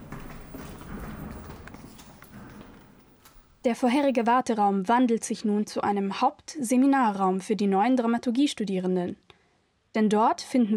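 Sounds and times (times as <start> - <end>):
footsteps climbing stairs with hard knocking treads: 0.0 - 4.2
speech: 3.6 - 9.2, 10.0 - 10.7.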